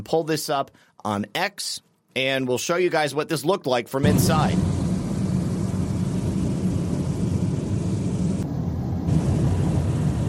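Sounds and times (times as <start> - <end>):
speech: 0.0 - 4.7
airplane engine noise in an open cabin: 4.0 - 10.2
roar of rushing air through a hole in an airplane fuselage: 4.0 - 10.2.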